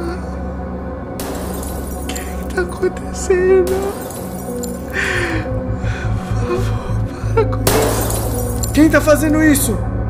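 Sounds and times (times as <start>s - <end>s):
steady low droning background: 0.0s - 10.0s
light bulbs shattering in a corridor: 1.2s - 2.8s, 3.7s - 5.0s, 7.7s - 9.0s
speech: 2.6s - 4.2s, 8.8s - 9.9s.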